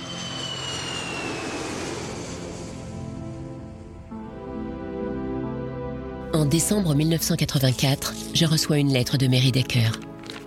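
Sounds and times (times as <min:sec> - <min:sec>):
airplane engine droning in flight: 0:00.0 - 0:05.6
speech: 0:06.4 - 0:10.1.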